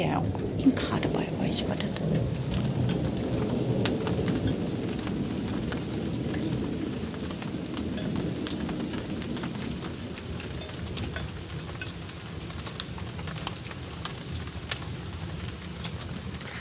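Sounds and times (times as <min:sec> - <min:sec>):
speech: 0:00.0 - 0:02.9
heavy rain: 0:00.0 - 0:16.6
thunder rumbling: 0:00.0 - 0:16.6
water dripping: 0:00.0 - 0:16.6.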